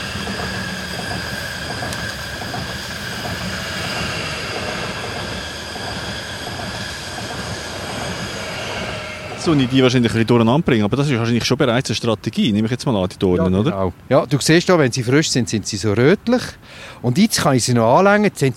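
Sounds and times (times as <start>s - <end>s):
faint metallic squeals: 0.0s - 11.3s
train with rolling wagons rumbling past: 0.0s - 12.7s
speech: 9.4s - 18.5s.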